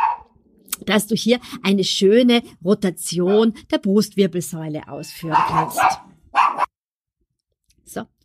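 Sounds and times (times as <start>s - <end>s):
dog barking: 0.0s - 0.3s, 3.2s - 3.5s, 5.2s - 6.7s
speech: 0.8s - 6.1s, 7.9s - 8.2s.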